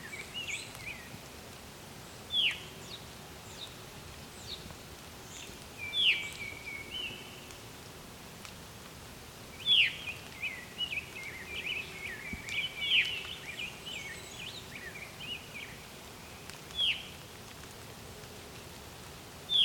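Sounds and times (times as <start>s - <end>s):
veery giving falling veer call: 2.3s - 7.7s, 9.5s - 17.8s.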